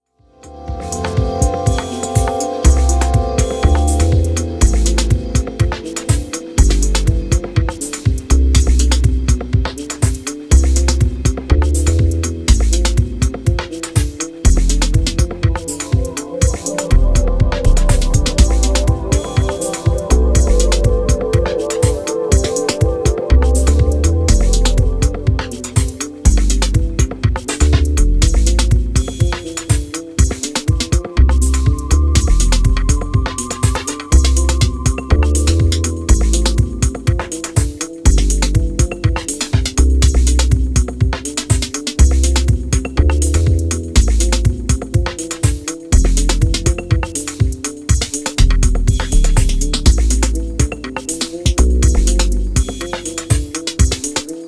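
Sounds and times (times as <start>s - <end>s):
keyboard music: 0.1s - 54.4s.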